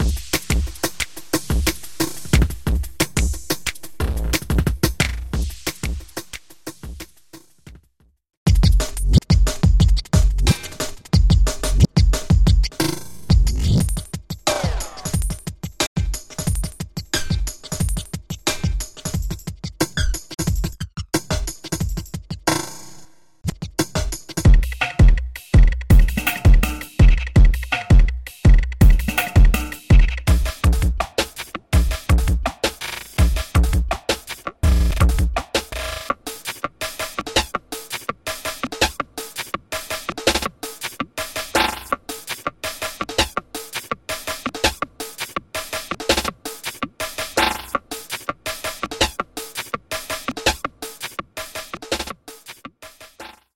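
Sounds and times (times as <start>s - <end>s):
hi octane jungle drums: 0.0s - 53.3s.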